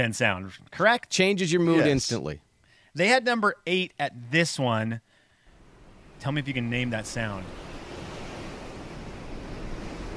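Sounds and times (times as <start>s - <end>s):
speech: 0.0s - 5.1s, 6.2s - 7.6s
ocean waves: 5.2s - 10.1s.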